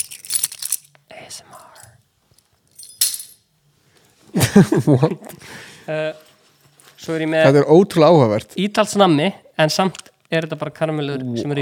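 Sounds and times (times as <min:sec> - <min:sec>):
keys jangling: 0:00.0 - 0:01.0, 0:02.7 - 0:03.4
speech: 0:04.6 - 0:06.2, 0:07.1 - 0:11.6.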